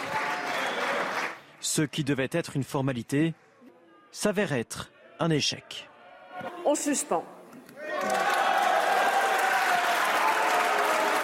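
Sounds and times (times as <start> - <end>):
cheering: 0.0 - 1.4, 7.8 - 11.2
sustained applause from the opposition in a reverberant parliamentary chamber: 0.0 - 1.6, 7.9 - 11.2
speech: 1.7 - 3.5, 4.1 - 8.3.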